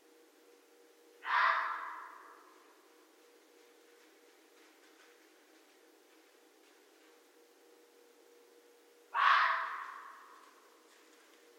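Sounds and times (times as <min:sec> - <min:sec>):
low steady hum: 0:00.0 - 0:11.5
red fox rasping hoarse call: 0:01.2 - 0:02.5, 0:09.1 - 0:10.4.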